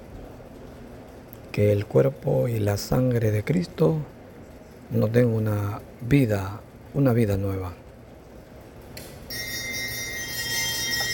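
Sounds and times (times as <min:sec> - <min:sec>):
speech: 0:01.6 - 0:04.2, 0:04.9 - 0:07.8
church bell ringing during Mass for communion: 0:09.3 - 0:11.1.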